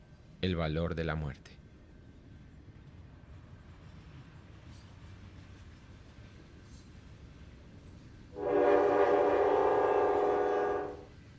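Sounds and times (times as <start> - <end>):
speech: 0.4 - 1.6
train horn blast near a train graveyard: 8.4 - 11.1.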